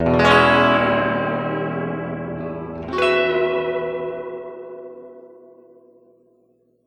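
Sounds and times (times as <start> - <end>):
medium tremolo chords: 0.0 - 5.5.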